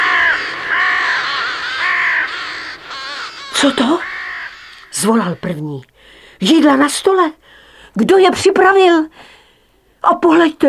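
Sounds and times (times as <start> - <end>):
several ravens cawing while flying home from hunting: 0.0 - 6.4
speech: 3.6 - 4.1, 5.0 - 9.4, 10.0 - 10.6.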